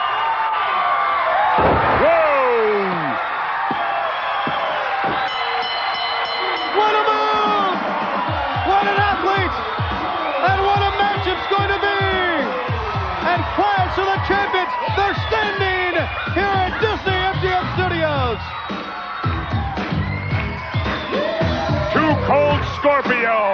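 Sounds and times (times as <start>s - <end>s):
roaring crowd of fans cheering and whooping: 0.0s - 23.5s
wrestler slammed onto mat by a belly-to-back suplex: 1.6s - 2.1s.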